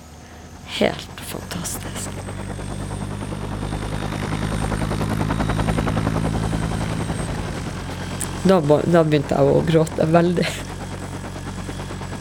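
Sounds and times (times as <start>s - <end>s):
helicopter engine drone: 0.0s - 12.1s
military helicopter rotor chopping: 0.0s - 12.1s
speech: 0.8s - 3.0s, 8.4s - 10.7s.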